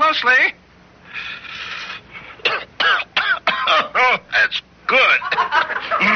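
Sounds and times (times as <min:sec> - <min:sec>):
speech: 0:00.1 - 0:00.6, 0:03.7 - 0:06.1
long breathy inhale of cigarette smoke: 0:01.0 - 0:02.4
harsh rasping coughs: 0:02.4 - 0:04.2
laughter: 0:05.1 - 0:06.1.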